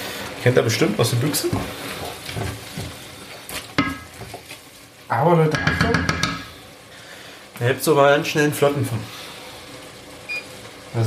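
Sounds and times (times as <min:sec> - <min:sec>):
soft stirring sounds in a pot: 0:00.0 - 0:07.7
sauerkraut bubbling and sizzling in a pot: 0:00.0 - 0:11.0
speech: 0:00.4 - 0:02.7, 0:05.2 - 0:06.2, 0:07.6 - 0:09.2.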